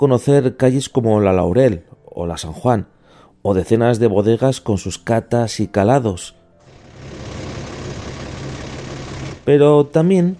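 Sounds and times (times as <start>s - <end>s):
speech: 0.0s - 6.4s, 9.5s - 10.3s
bus engine idling in La Rioja: 6.7s - 9.4s.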